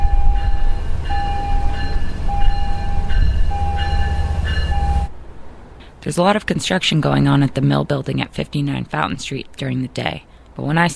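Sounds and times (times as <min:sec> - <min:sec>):
steady high-pitched metallic whine of a train: 0:00.0 - 0:05.1
train pulling into a station with a heavy rumble: 0:00.0 - 0:08.5
speech: 0:06.1 - 0:10.9.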